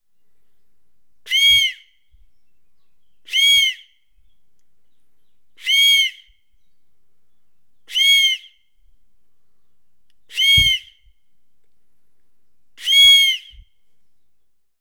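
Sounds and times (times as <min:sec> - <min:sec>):
dry eagle whistle: 0:01.3 - 0:02.3, 0:03.2 - 0:04.1, 0:05.6 - 0:06.6, 0:07.8 - 0:08.8, 0:10.3 - 0:11.2, 0:12.8 - 0:13.8.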